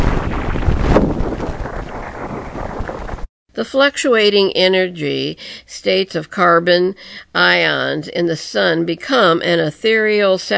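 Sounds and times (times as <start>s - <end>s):
sonified plasma stream collision fluttering rush of noise: 0.0s - 3.3s
speech: 3.6s - 10.5s.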